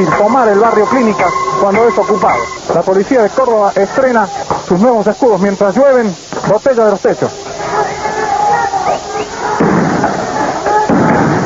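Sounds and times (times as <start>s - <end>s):
crowd shouting: 0.0s - 4.7s, 7.3s - 11.4s
speech: 0.0s - 7.9s
tear gas canisters fired by police with launch bang and rushing hiss: 9.6s - 10.2s, 10.9s - 11.4s.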